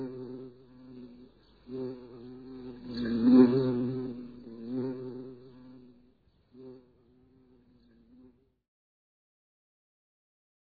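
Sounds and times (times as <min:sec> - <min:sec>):
bumblebee buzzing: 0:00.0 - 0:06.0, 0:06.6 - 0:07.5.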